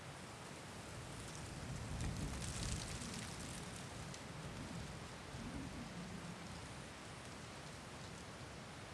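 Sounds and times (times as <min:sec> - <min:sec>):
gust of wind in dry leaves: 0:00.2 - 0:08.8.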